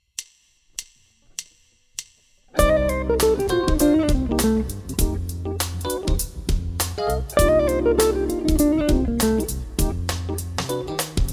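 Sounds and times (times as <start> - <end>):
Dorian melodic lick: 2.6 - 6.2, 7.0 - 11.2.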